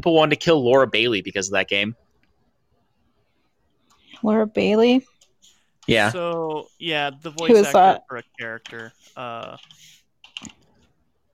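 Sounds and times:
speech: 0.0 - 2.0, 4.2 - 5.1, 5.8 - 10.6
soft hush: 3.8 - 10.1
quiet typing on a computer keyboard: 8.6 - 10.9.

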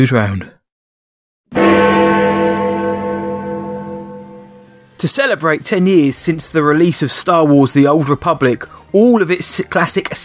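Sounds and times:
speech: 0.0 - 0.6, 5.0 - 10.2
clock tower bell strike: 1.5 - 5.0.

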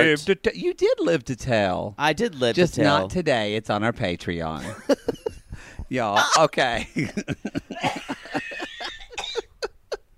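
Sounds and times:
speech: 0.0 - 5.2, 5.9 - 8.0
laughter: 4.6 - 5.5, 6.3 - 9.7
person coughing fit: 7.7 - 9.7.

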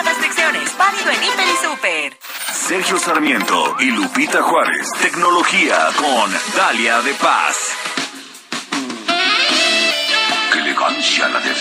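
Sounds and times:
speech: 0.9 - 7.8, 11.0 - 11.6
cheesy nightclub-style music: 2.7 - 11.6.

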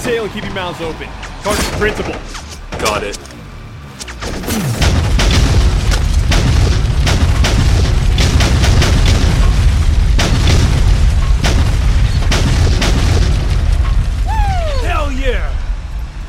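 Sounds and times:
speech: 0.2 - 3.4
bombs exploding on target in an airstrike: 4.2 - 15.0.

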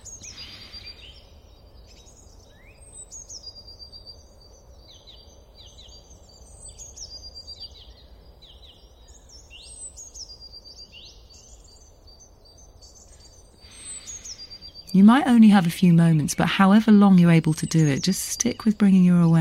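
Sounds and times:
soft steady outdoor hiss: 0.0 - 1.7, 12.9 - 19.3
faint birdsong with high whistles and sweeping calls: 0.0 - 19.3
speech: 15.0 - 19.3.

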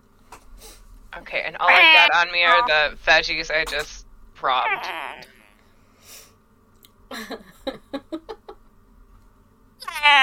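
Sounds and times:
speech: 1.3 - 5.3, 7.1 - 7.5, 10.0 - 10.2
person imitating a hungry cat meowing behind a door: 1.6 - 2.7, 4.5 - 5.4, 9.8 - 10.2.

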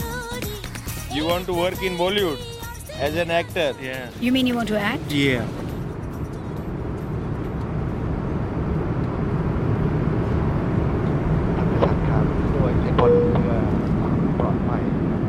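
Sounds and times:
speech: 1.2 - 5.6
airplane cabin engine drone in flight: 4.1 - 15.2.

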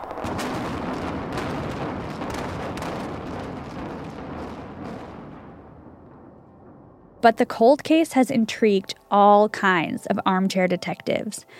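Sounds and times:
fireworks crackling bangs: 0.0 - 8.1
loud booming blasts of building demolition explosions: 0.0 - 8.1
speech: 7.2 - 11.5.

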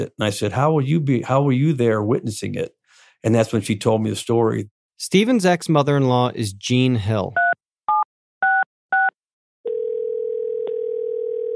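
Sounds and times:
speech: 0.0 - 7.4
touch-tone telephone keypad beeps of a number being dialed: 7.4 - 9.1
steady continuous phone tone: 7.4 - 11.5.

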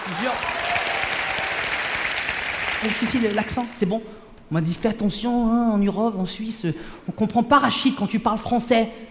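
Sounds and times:
crowd applause: 0.0 - 3.7
speech: 0.1 - 0.6, 2.8 - 9.0.

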